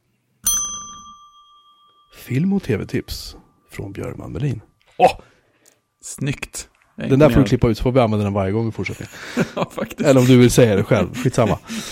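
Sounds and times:
small bell struck once: 0.4s - 3.7s
speech: 2.2s - 5.3s, 6.0s - 11.9s
laughter: 8.9s - 11.9s.

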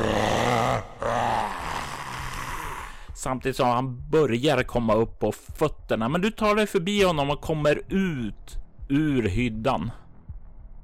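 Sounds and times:
man's deep inhuman guttural roar: 0.0s - 3.1s
speech: 3.2s - 10.0s.

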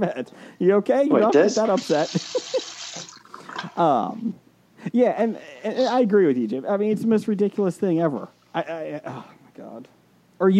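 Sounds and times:
speech: 0.0s - 2.6s, 3.8s - 10.5s
water pouring into a container: 1.4s - 3.8s.

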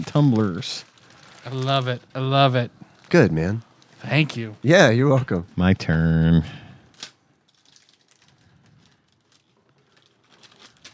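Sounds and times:
gift wrapping paper being torn open: 0.0s - 2.5s, 6.9s - 10.9s
speech: 0.0s - 6.6s.

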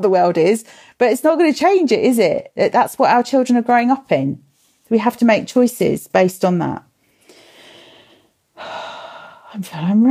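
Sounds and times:
speech: 0.0s - 6.9s, 9.5s - 10.0s
person taking a breath: 7.0s - 9.4s.

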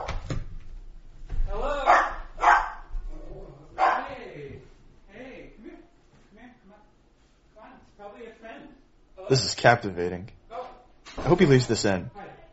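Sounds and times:
dog barking and yipping at a knock on the door: 1.8s - 2.9s, 3.8s - 4.2s
speech: 9.3s - 10.4s, 11.2s - 12.2s.

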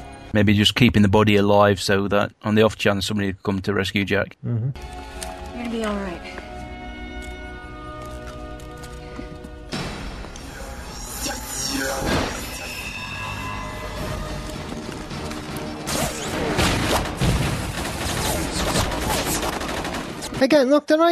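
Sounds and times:
speech: 0.4s - 6.4s, 20.4s - 21.1s
gunfire in a tunnel: 15.9s - 20.4s.

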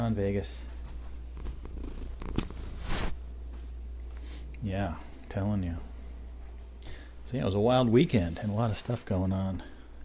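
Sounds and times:
speech: 0.1s - 0.8s, 4.6s - 5.9s, 7.3s - 9.7s
cat purring: 1.3s - 3.1s
airy rustle: 2.5s - 3.2s.

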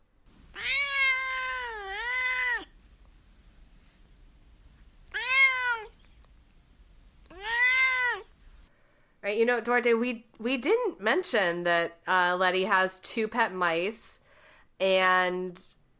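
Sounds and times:
cat meowing: 0.5s - 2.7s, 5.1s - 6.0s, 7.3s - 8.3s
speech: 9.3s - 14.2s, 14.8s - 15.8s.

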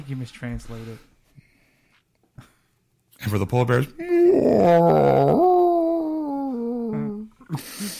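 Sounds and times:
speech: 0.1s - 1.1s, 3.2s - 5.5s, 7.5s - 7.9s
human voice imitating whale calls: 4.1s - 7.4s.

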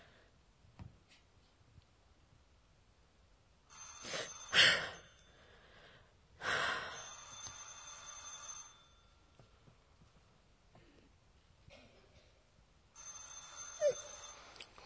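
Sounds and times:
telephone bell ringing: 3.7s - 5.5s, 6.8s - 9.4s, 13.0s - 14.8s.

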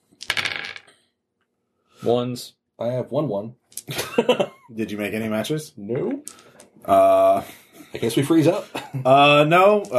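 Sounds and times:
dice clattering across a hard tabletop rolled for initiative in a game: 0.1s - 1.0s, 6.1s - 6.7s
speech: 2.0s - 9.9s.

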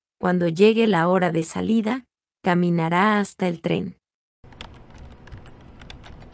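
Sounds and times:
speech: 0.2s - 4.0s
rapid typing on a computer keyboard with a braille display: 4.5s - 6.3s.

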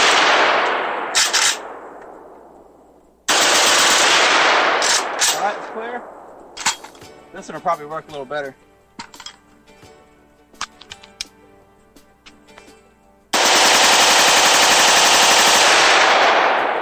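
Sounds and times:
semi-automatic rifle firing rapidly without a bump stock: 0.0s - 2.3s, 3.3s - 6.2s, 13.3s - 16.7s
speech: 7.4s - 8.7s
light clicks and handling taps: 10.6s - 11.4s.

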